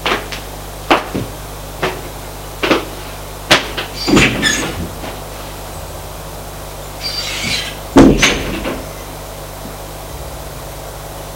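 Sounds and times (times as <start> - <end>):
low steady hum: 0.0 - 11.3
apartment door opening: 3.5 - 6.2, 7.0 - 9.2.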